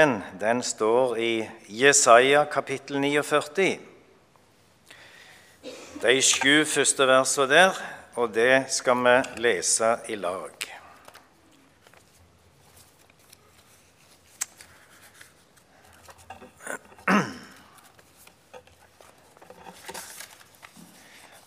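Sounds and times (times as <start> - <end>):
speech: 0.0 - 3.9, 5.6 - 10.8
papers being shuffled and sorted: 11.0 - 21.4.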